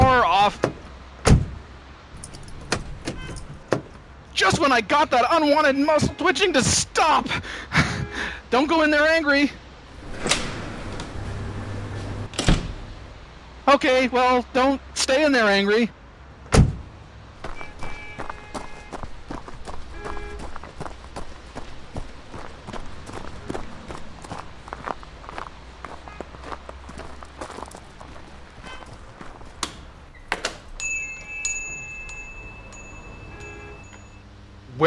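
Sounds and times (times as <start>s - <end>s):
footsteps of someone walking into a room: 0.0s - 5.2s, 9.9s - 13.2s, 16.4s - 34.2s
speech: 0.4s - 0.7s, 4.4s - 9.6s, 13.7s - 16.0s.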